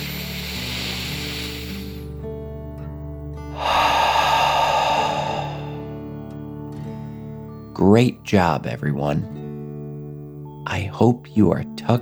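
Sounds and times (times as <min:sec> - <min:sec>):
slow deep breath in and out in a children's bedtime exercise: 0:00.0 - 0:02.2, 0:03.5 - 0:06.2
steady sustained tonal hum: 0:03.6 - 0:06.3
speech: 0:07.8 - 0:09.5, 0:10.7 - 0:12.0.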